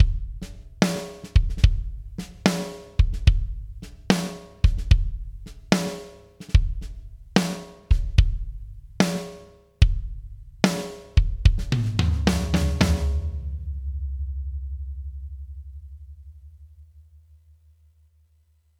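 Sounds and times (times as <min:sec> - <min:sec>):
kick drum: 0:00.0 - 0:00.4, 0:01.4 - 0:02.0, 0:03.0 - 0:03.7, 0:04.6 - 0:05.4, 0:06.6 - 0:06.9, 0:07.9 - 0:08.6, 0:09.8 - 0:10.2, 0:11.2 - 0:11.8
tom drum: 0:00.0 - 0:17.0
snare drum: 0:00.8 - 0:08.3, 0:10.7 - 0:13.6.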